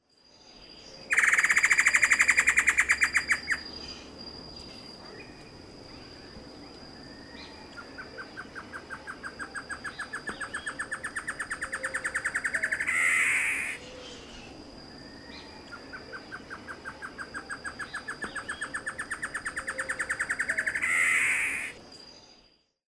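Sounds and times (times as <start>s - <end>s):
Taraba major calling: 0.2s - 22.8s.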